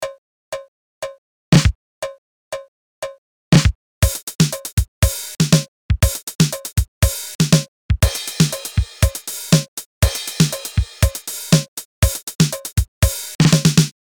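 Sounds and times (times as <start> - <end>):
TR 707 drum machine beat: 1.6 - 1.8, 3.6 - 14.0.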